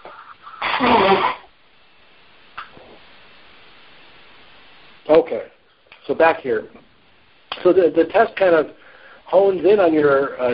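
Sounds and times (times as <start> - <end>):
nose blowing: 0.0 - 1.5
speech: 5.1 - 6.9, 7.6 - 10.5.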